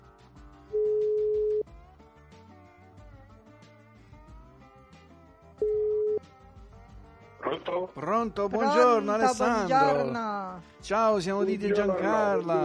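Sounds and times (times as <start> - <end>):
quiet music: 0.0 - 12.6
ringback tone of an outgoing telephone call: 0.7 - 1.6, 5.6 - 6.2
speech: 7.6 - 12.6.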